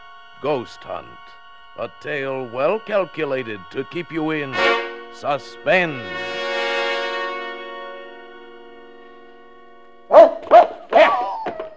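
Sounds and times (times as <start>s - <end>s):
sustained musical tone: 0.0s - 10.9s
speech: 0.4s - 6.4s
dog barking with a slight echo: 10.1s - 11.7s.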